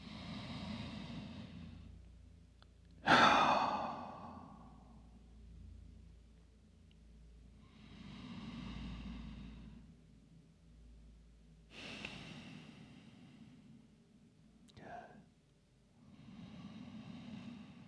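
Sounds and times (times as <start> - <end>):
deep slow breathing during a yoga flow: 0.0 - 2.3, 3.0 - 5.4, 7.5 - 10.1, 11.7 - 14.2, 16.0 - 17.8
loud sighing exhale during yoga: 3.0 - 4.8.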